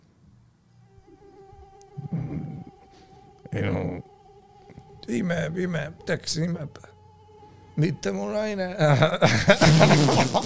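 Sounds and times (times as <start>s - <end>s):
mosquitoes buzzing: 0.7s - 8.6s, 9.4s - 10.4s
speech: 3.5s - 4.1s, 5.1s - 6.9s, 7.8s - 10.4s
laughter: 8.8s - 10.4s.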